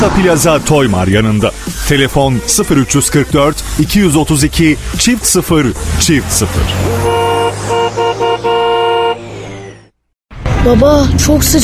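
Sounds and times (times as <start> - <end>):
speech: 0.0 - 7.1, 10.6 - 11.6
car horns honking in a traffic jam: 5.6 - 9.9.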